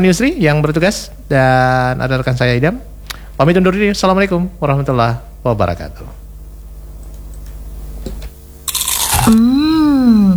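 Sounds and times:
speech: 0:00.0 - 0:06.2, 0:09.3 - 0:10.3
crisp crunch of biting into kerupuk gombal tapioca cracker: 0:08.7 - 0:09.4
long hummed voice tone rising and falling: 0:09.1 - 0:10.3.

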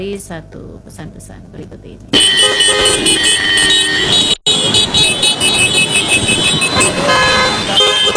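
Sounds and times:
speech: 0:00.0 - 0:04.4
many car horns honking in a traffic jam: 0:02.1 - 0:08.1.

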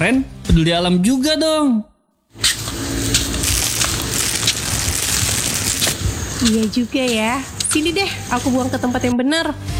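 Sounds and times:
speech: 0:00.0 - 0:02.5, 0:06.4 - 0:09.7
plastic cup being crushed: 0:03.3 - 0:06.0.

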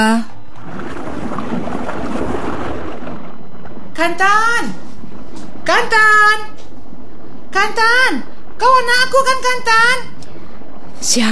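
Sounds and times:
speech: 0:00.0 - 0:00.3, 0:04.0 - 0:04.8, 0:05.7 - 0:06.5, 0:07.6 - 0:10.2, 0:11.0 - 0:11.3
water splashing and churning around a small rowing boat paddled hard: 0:00.4 - 0:04.0.

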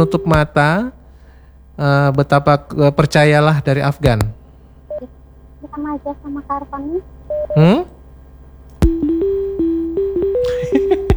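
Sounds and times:
speech: 0:00.0 - 0:01.0, 0:01.8 - 0:04.4, 0:05.0 - 0:07.9
phone ringtone electronic melody: 0:05.7 - 0:07.8, 0:08.9 - 0:11.1.

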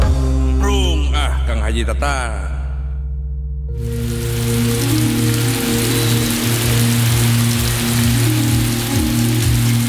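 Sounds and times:
low rumbling undertone: 0:00.2 - 0:09.8
speech: 0:01.7 - 0:02.5
steady rain pouring: 0:03.8 - 0:09.8.

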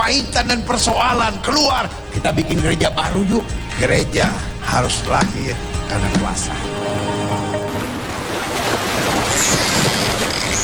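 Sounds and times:
speech: 0:00.1 - 0:07.1
ocean waves washing onto a beach: 0:07.6 - 0:10.6.

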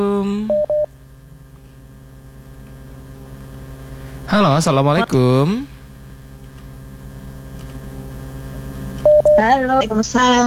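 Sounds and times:
steady low hum with faint pulsing from the open phone line: 0:00.0 - 0:10.4
speech: 0:04.3 - 0:05.7, 0:09.4 - 0:10.4
short loud electronic beep of a call connecting: 0:09.1 - 0:09.4.

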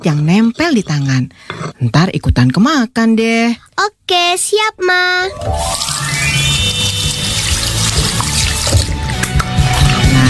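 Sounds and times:
speech: 0:00.0 - 0:06.1
tap water running into a sink as hands are washed: 0:05.7 - 0:10.2.

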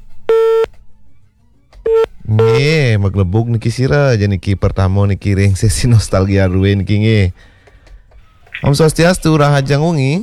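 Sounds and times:
telephone line signal beeps while a caller is dialed: 0:00.3 - 0:00.7, 0:01.9 - 0:02.7
speech: 0:02.6 - 0:07.5, 0:08.6 - 0:10.2.

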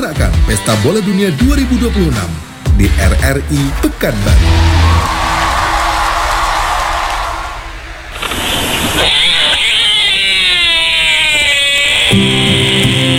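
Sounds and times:
speech: 0:00.0 - 0:05.2, 0:12.1 - 0:12.6
steady hiss: 0:02.0 - 0:13.1
low rumbling background: 0:02.7 - 0:12.1
binturong giving cat-like yowls: 0:04.4 - 0:13.1.

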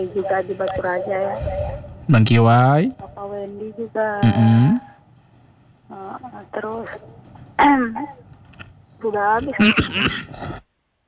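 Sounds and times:
speech: 0:00.0 - 0:04.9, 0:05.9 - 0:08.2, 0:09.0 - 0:10.6
person coughing in a rough fit: 0:04.2 - 0:04.8, 0:09.4 - 0:10.6.

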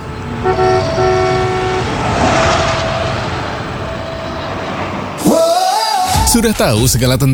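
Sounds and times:
loud train horn blast: 0:00.0 - 0:05.2
train passing a level crossing with barrier gates: 0:00.0 - 0:07.3
speech: 0:06.4 - 0:07.3.

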